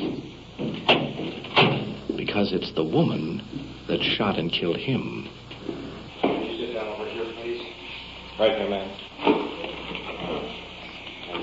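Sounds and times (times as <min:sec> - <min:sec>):
door opening with short clunks: 0:00.0 - 0:02.0
low steady room hum: 0:00.0 - 0:11.4
speech: 0:02.4 - 0:05.4, 0:08.4 - 0:09.4.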